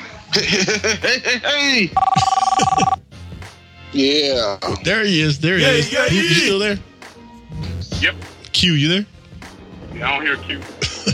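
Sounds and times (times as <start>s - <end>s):
laughter: 0.3s - 1.4s, 10.8s - 11.1s
speech: 0.3s - 3.0s, 3.9s - 6.9s, 8.0s - 9.1s, 10.0s - 11.1s
telephone ring tone while dialing a caller into a group call: 2.0s - 3.0s.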